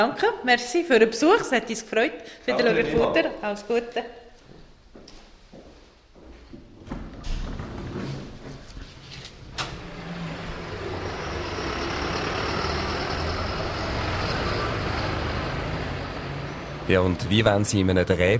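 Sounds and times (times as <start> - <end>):
speech: 0.0 - 4.2, 16.9 - 18.3
clunks and thuds: 6.8 - 9.9
two farm tractors with heavy diesel engines rumbling past a village bank in Weiningen: 7.5 - 17.8.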